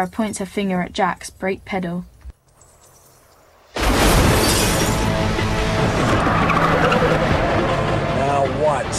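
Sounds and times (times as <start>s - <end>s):
speech: 0.0s - 2.1s
metal crunching: 2.5s - 7.8s
glass shattering: 2.8s - 5.2s
debris scraping: 2.8s - 7.7s
SUV crashing and flipping over: 3.7s - 8.9s.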